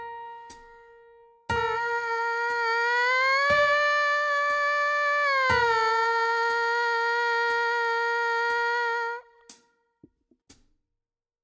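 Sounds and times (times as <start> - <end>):
MPC buzz line: 1.6 - 9.3.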